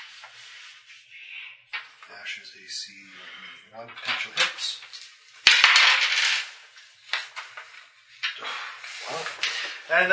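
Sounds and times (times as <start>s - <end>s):
speech: 2.1s - 5.1s, 8.4s - 10.1s
dice rolled during a tabletop role-playing game session: 4.0s - 7.4s.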